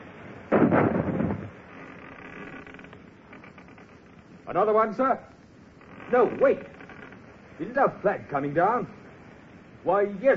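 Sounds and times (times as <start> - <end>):
cannon shot from a sailing warship: 0.5 - 1.5
speech: 4.5 - 5.3, 6.1 - 6.8, 7.6 - 9.0, 9.8 - 10.3.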